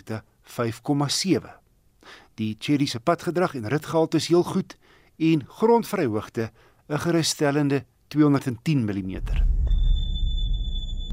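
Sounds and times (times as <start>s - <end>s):
speech: 0.0s - 9.6s
car brakes squealing: 9.7s - 11.1s.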